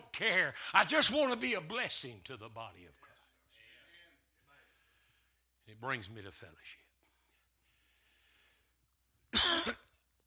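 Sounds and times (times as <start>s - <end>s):
speech: 0.2s - 3.1s, 5.7s - 6.8s
person coughing harshly: 9.3s - 10.0s.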